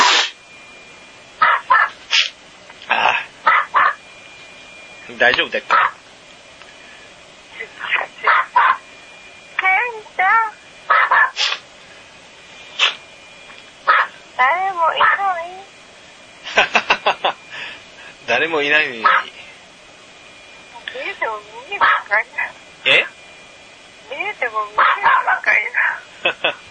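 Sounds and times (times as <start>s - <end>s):
pet dog barking: 1.4s - 2.0s, 3.4s - 4.0s, 5.7s - 6.0s, 8.2s - 8.8s, 10.9s - 11.6s, 13.9s - 14.2s, 15.0s - 15.3s, 19.0s - 19.3s, 21.8s - 22.1s, 24.8s - 26.0s
person speaking on a phone call: 2.9s - 3.3s, 7.6s - 8.6s, 9.6s - 10.6s, 14.4s - 15.7s, 20.8s - 23.2s, 24.1s - 26.1s
speech: 5.1s - 6.0s, 18.4s - 19.3s, 21.4s - 23.1s, 24.2s - 26.6s
laughter: 16.4s - 17.7s, 26.2s - 26.7s.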